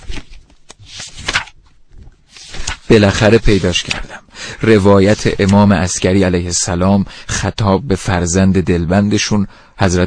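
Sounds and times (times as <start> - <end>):
pages of an old book being turned: 0.0 - 4.1
speech: 2.9 - 10.0.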